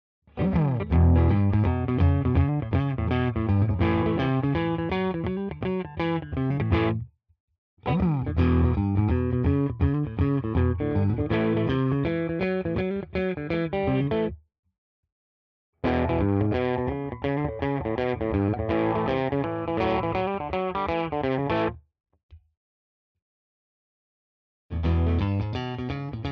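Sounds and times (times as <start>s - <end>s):
clean riff in all positions: 0.4s - 7.1s, 7.9s - 14.4s, 15.8s - 21.8s, 24.7s - 26.3s.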